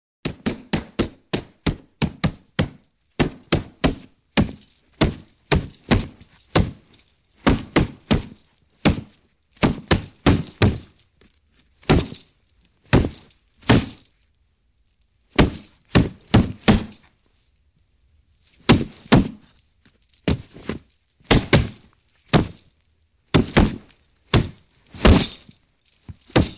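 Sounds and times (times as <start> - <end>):
punch on boxing heavy bag: 0.2 - 11.0, 11.9 - 12.3, 12.9 - 14.0, 15.4 - 17.0, 18.7 - 19.4, 20.3 - 22.7, 23.3 - 25.5, 26.1 - 26.5.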